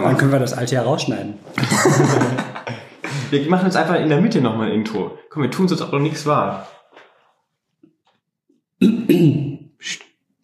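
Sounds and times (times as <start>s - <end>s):
speech: 0.1s - 2.6s, 3.3s - 6.8s, 8.8s - 10.0s
laughter: 1.5s - 3.4s
person clearing throat: 8.8s - 9.7s.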